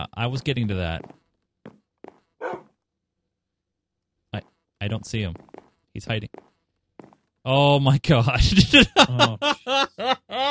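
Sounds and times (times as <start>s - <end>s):
speech: 0.1s - 1.2s, 4.4s - 6.5s, 7.4s - 10.4s
dog barking with short sharp yaps: 2.4s - 2.7s
laughter: 8.4s - 10.4s.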